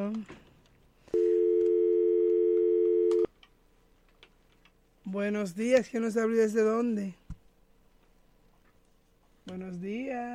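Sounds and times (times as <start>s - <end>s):
speech: 0.0s - 0.4s, 5.1s - 7.2s, 9.5s - 10.3s
steady incoming call beep on a phone line: 1.1s - 3.3s.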